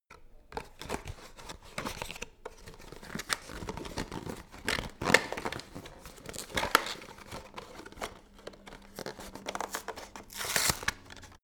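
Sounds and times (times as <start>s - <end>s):
paper rustling: 0.6s - 11.4s
paper ripping: 3.3s - 11.4s.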